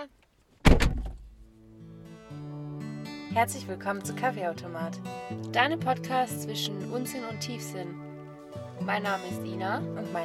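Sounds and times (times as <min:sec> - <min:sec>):
car door shutting: 0:00.6 - 0:01.3
speech: 0:03.4 - 0:08.0, 0:08.8 - 0:10.2.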